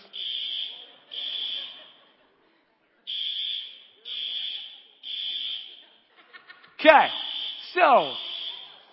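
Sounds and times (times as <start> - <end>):
alarm system blaring high-pitched electronic beeps: 0.0 - 1.8, 3.1 - 5.8, 7.1 - 8.8
faint voices murmuring: 0.0 - 8.9
people chuckling: 1.1 - 2.7, 6.1 - 6.8
speech: 6.8 - 7.2, 7.8 - 8.2.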